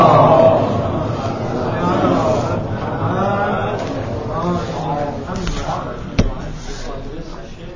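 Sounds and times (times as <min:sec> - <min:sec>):
audience reciting salawat in unison: 0:00.0 - 0:05.4.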